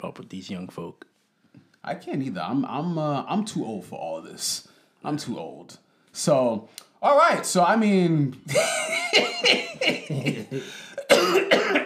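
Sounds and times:
speech: 0.0 - 1.1, 1.8 - 11.8
laughter: 8.5 - 11.1
harsh throaty coughs: 9.4 - 11.8.

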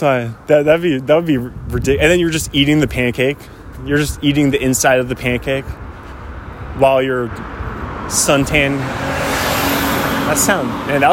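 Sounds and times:
speech: 0.0 - 5.8, 6.8 - 9.2, 10.3 - 11.1
car with rough engine driving past: 6.1 - 11.1.

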